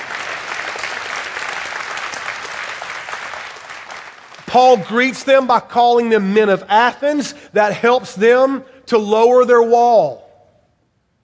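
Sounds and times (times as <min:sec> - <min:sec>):
audience applause: 0:00.0 - 0:04.6
speech: 0:04.5 - 0:10.2.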